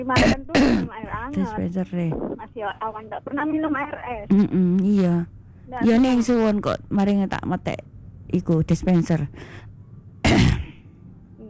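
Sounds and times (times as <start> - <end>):
speech: 0.0 - 9.7
person with a bad cough and feverish chills coughing: 0.1 - 1.5, 10.3 - 10.8.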